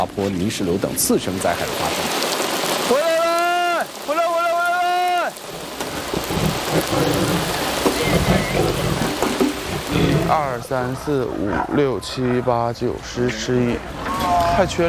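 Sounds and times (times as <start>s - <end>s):
speech: 0.0s - 2.2s, 2.9s - 3.1s, 6.8s - 9.0s, 10.0s - 14.8s
steady rain hissing: 0.0s - 14.8s
low rolling thunder: 5.5s - 11.0s.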